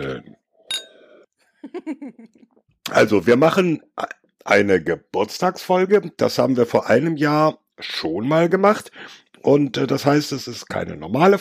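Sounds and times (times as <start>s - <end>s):
speech: 0.0s - 0.3s, 1.7s - 11.4s
two glasses clinking in a toast: 0.7s - 1.2s.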